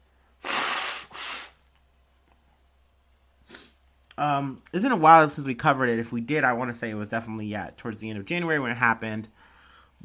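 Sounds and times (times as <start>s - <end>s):
sniff-like puff: 0.4s - 1.6s, 3.4s - 3.8s
person blowing nose: 0.4s - 1.7s, 3.4s - 3.8s
speech: 4.2s - 9.4s.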